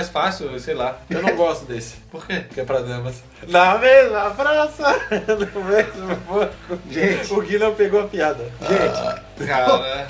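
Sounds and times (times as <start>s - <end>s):
speech: 0.0s - 10.0s
people laughing: 4.8s - 7.3s
loud throaty burp: 8.6s - 9.5s.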